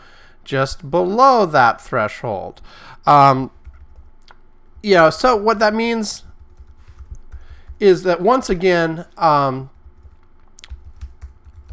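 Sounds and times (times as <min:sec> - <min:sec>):
speech: 0:00.5 - 0:03.6, 0:04.8 - 0:06.3, 0:07.8 - 0:09.7
typing on a computer keyboard: 0:03.5 - 0:08.1, 0:09.5 - 0:11.7.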